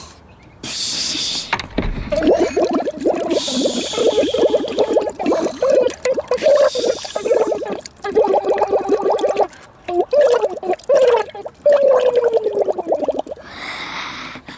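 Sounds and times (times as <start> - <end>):
wobbly sung melody: 1.3 - 12.9
water bubbling and gurgling from a goldfish blowing bubbles: 1.4 - 13.5.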